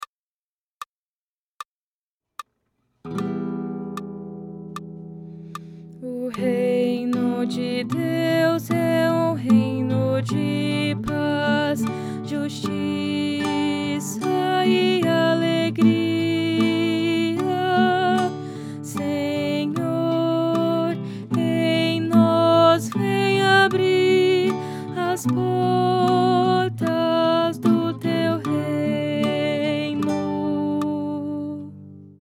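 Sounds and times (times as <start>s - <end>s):
contralto singing: 6.0s - 31.7s.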